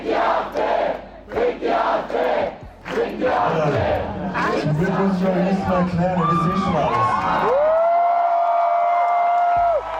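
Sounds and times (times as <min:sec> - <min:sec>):
concert audience collective rhythmic shouting: 0:00.0 - 0:05.3
large concert audience roaring, cheering and whooping: 0:06.1 - 0:09.9.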